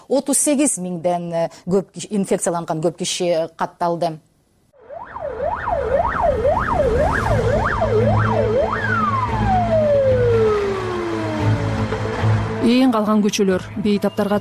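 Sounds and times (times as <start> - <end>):
speech: 0.1 - 4.3, 12.8 - 14.3
ambulance siren wailing on streets during a coronavirus epidemic: 4.8 - 12.5.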